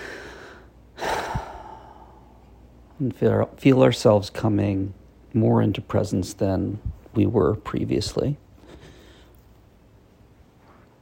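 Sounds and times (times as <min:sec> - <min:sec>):
long deep breath: 0:00.0 - 0:02.5, 0:08.6 - 0:09.4
speech: 0:03.0 - 0:08.4.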